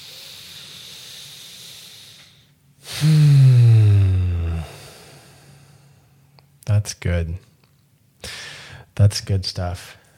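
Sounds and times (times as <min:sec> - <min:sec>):
deep breath in and out: 0:00.0 - 0:06.2, 0:08.2 - 0:08.9
soft steady hiss: 0:00.0 - 0:10.1
speech: 0:06.8 - 0:07.5, 0:09.0 - 0:10.0.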